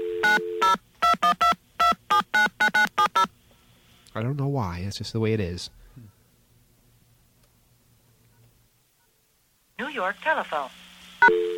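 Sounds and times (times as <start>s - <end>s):
touch-tone telephone dialing beeps: 0.1s - 3.3s, 11.2s - 11.5s
speech: 4.2s - 5.8s, 10.0s - 11.4s.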